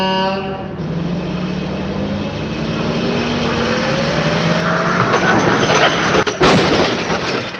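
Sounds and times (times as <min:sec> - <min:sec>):
tractor engine roaring: 0:00.0 - 0:07.5
tractor with trailer and cultivator crashing in a crash test: 0:04.5 - 0:07.5.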